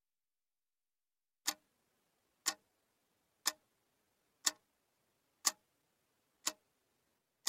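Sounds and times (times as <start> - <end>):
tin alarm clock ticking: 1.4 - 1.6, 2.4 - 2.6, 3.4 - 3.6, 4.4 - 4.6, 5.4 - 5.6, 6.4 - 6.6.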